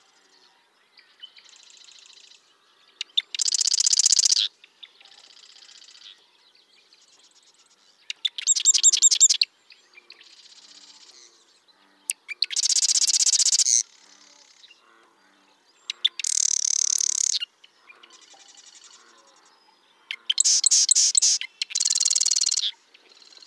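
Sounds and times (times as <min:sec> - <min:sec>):
bird song of buzzy high trilled bursts and rattling phrases: 0:00.2 - 0:23.4
brief sharp bird chips: 0:20.3 - 0:22.7.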